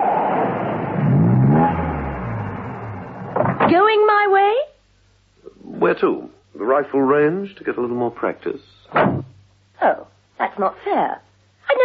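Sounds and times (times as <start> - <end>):
car engine driving up a country lane: 0.0 - 3.6
speech: 5.8 - 11.8.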